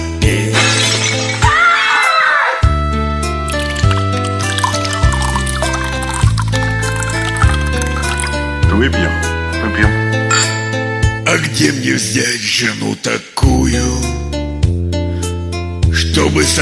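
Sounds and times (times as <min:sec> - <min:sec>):
glass bottle smashed against tree stump: 0:00.5 - 0:01.7, 0:03.4 - 0:08.3, 0:10.3 - 0:10.8
steady rhythmic instrumental music with a bouncing bass line: 0:02.7 - 0:11.3, 0:13.7 - 0:16.0
glass bottle shards tinkling and scattering: 0:10.3 - 0:10.8
speech: 0:11.5 - 0:14.1, 0:16.2 - 0:16.6.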